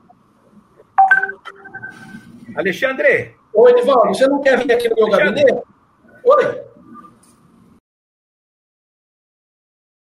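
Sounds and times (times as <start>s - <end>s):
telephone keypad tones dialing a number: 1.0s - 2.1s
speech: 2.6s - 6.6s.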